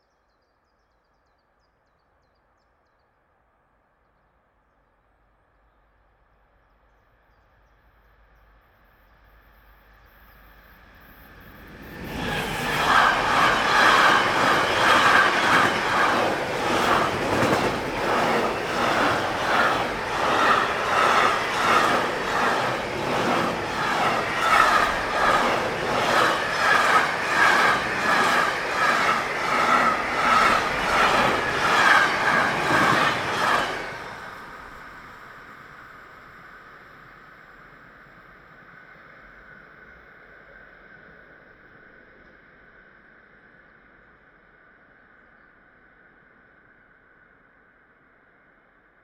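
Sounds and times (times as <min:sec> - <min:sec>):
freight train whooshing past fast: 0:10.5 - 0:36.6.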